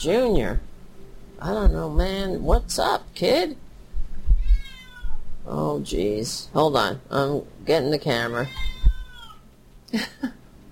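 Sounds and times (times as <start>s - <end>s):
speech: 0.0s - 0.7s, 1.4s - 3.6s, 5.5s - 8.8s, 9.9s - 10.4s
agitated pet cat meowing and yowling: 4.3s - 5.2s, 8.4s - 9.4s.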